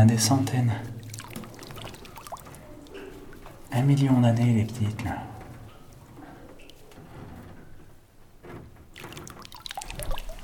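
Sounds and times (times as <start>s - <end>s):
speech: 0.0s - 0.9s, 3.7s - 5.3s
trickling water: 0.1s - 6.9s, 8.9s - 10.4s
gentle irregular water splashes: 0.8s - 3.8s, 8.9s - 10.4s
small waves lapping against rock in a flooded cave: 1.0s - 3.4s, 8.9s - 10.4s.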